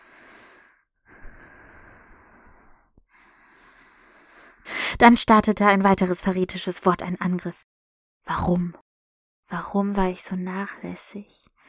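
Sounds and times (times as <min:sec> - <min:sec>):
slow breathing in and out through the nose: 0:00.0 - 0:04.9
speech: 0:05.0 - 0:07.7, 0:08.3 - 0:08.8, 0:09.5 - 0:11.6.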